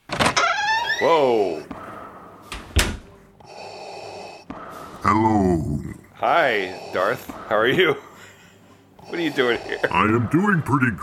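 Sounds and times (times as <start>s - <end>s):
speech: 1.0s - 1.8s, 5.1s - 8.1s, 9.1s - 11.0s
door latch click: 2.5s - 3.0s.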